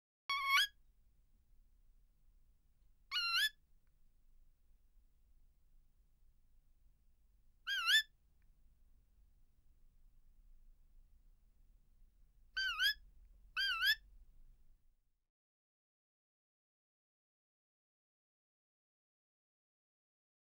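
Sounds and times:
kookaburra calling: 3.1 - 3.5, 7.7 - 8.1, 12.6 - 13.0, 13.6 - 14.0.

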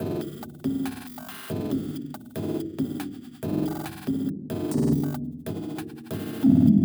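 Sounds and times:
140 bpm music loop: 0.0 - 6.8.

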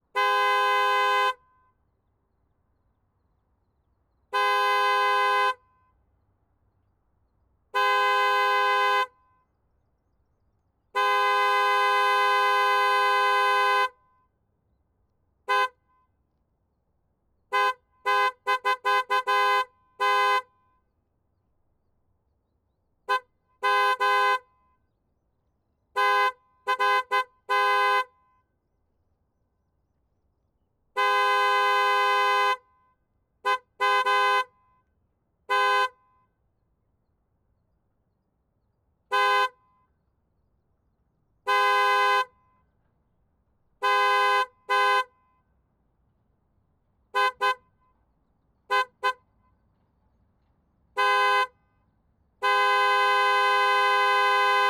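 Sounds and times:
BMW 760i horn: 0.0 - 1.8, 4.3 - 6.0, 7.7 - 9.5, 10.9 - 14.3, 15.5 - 16.2, 17.5 - 20.8, 23.1 - 24.8, 26.0 - 28.5, 31.0 - 34.9, 35.5 - 36.4, 39.1 - 40.0, 41.4 - 42.7, 43.8 - 45.4, 47.1 - 47.9, 48.7 - 49.3, 50.9 - 51.8, 52.4 - 54.6.

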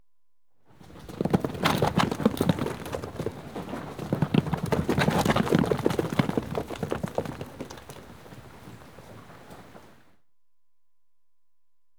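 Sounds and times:
sheep running past on concrete outdoors: 0.7 - 10.0.

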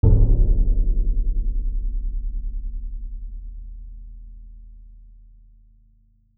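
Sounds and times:
big drum impact hit: 0.0 - 3.0.

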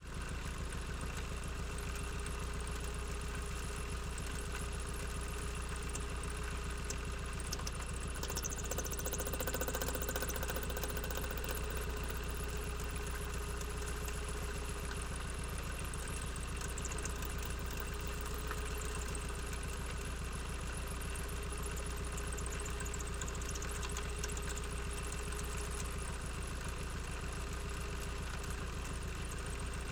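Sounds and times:
1965 GAZ 69 engine and gearbox idling steadily onboard: 0.1 - 29.9.

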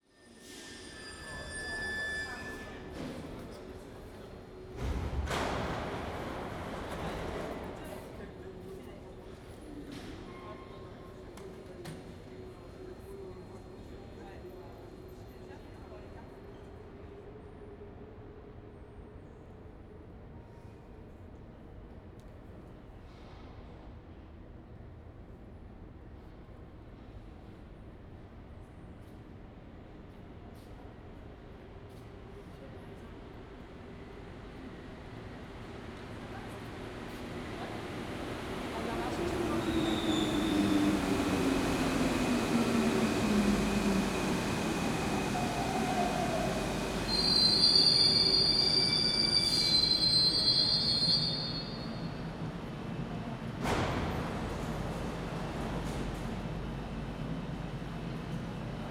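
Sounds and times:
underground metro train passing a platform: 0.2 - 16.2, 32.5 - 58.8.

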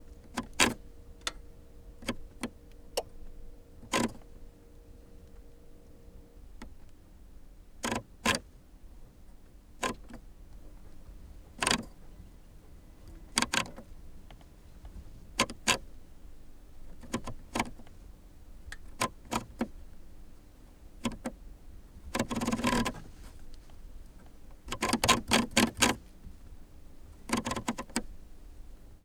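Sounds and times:
2019 VW Golf Variant TDI temperature and fan speed dial turning: 0.0 - 6.8, 7.8 - 8.5, 11.0 - 12.1, 13.0 - 16.0, 16.8 - 18.0, 18.7 - 19.9, 21.0 - 21.4, 22.1 - 26.4, 27.0 - 28.8.

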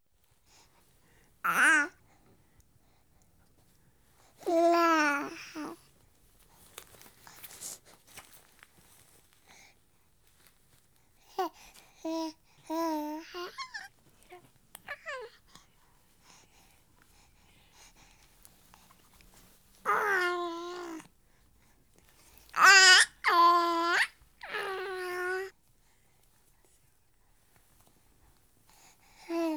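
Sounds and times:
week-old baby boy making happy sounds: 1.5 - 2.0, 4.4 - 5.8, 12.1 - 13.9, 19.9 - 21.1, 22.5 - 25.5.

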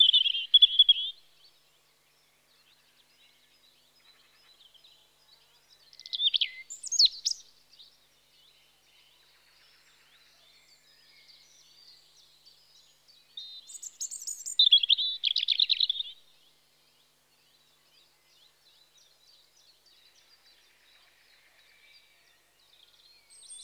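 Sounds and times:
European robin Erithacus rubecula song in spring: 0.0 - 1.6, 5.8 - 8.0, 10.7 - 16.5, 23.0 - 23.6.

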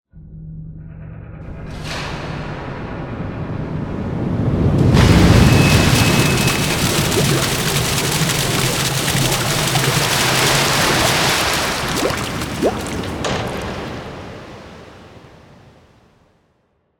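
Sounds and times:
underground sewer cascade: 4.5 - 14.6.

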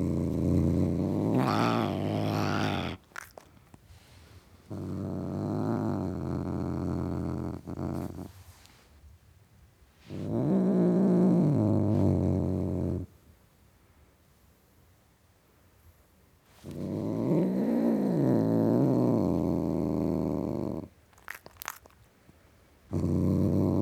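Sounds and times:
male domestic cat growling: 0.0 - 3.5, 4.6 - 8.3, 10.1 - 13.1, 16.6 - 22.0, 22.9 - 23.8.

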